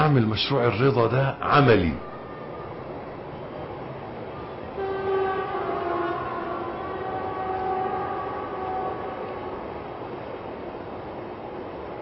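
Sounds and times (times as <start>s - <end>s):
train rumbling past: 0.0s - 12.0s
speech: 0.1s - 2.1s
train horn long sustained blast: 4.7s - 10.0s.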